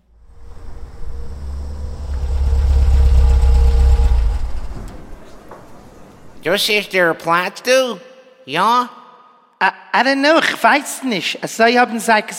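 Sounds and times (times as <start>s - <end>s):
car engine idling: 0.0s - 6.5s
speech: 6.4s - 9.0s, 9.6s - 12.3s.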